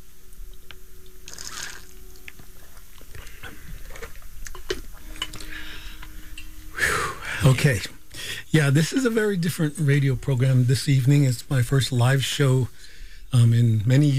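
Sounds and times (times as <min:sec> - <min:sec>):
quiet hum: 0:00.0 - 0:14.1
people sipping and swallowing water: 0:00.5 - 0:06.2
glass clinking: 0:04.5 - 0:06.7
speech: 0:07.4 - 0:14.1.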